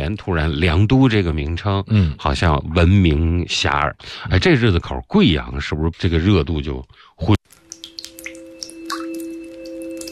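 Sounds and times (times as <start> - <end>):
speech: 0.0 - 7.4
faucet dripping: 7.4 - 10.1.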